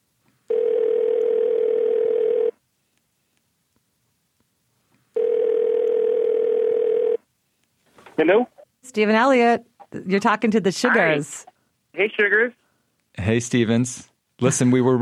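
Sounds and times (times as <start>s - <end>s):
buzzing telephone tones while a call is being placed: 0.5s - 2.6s, 5.2s - 7.2s
speech: 8.2s - 12.6s, 13.2s - 15.0s.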